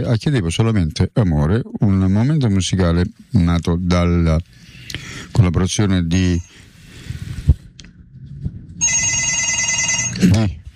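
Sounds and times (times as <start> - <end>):
speech: 0.0 - 4.6, 5.3 - 6.5, 10.3 - 10.6
telephone ringing: 8.8 - 10.3.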